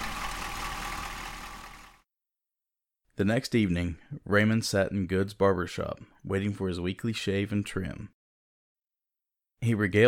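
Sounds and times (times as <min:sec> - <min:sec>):
heavy truck engine rumbling as the truck drives off: 0:00.0 - 0:02.0
speech: 0:03.2 - 0:08.2, 0:09.6 - 0:10.0.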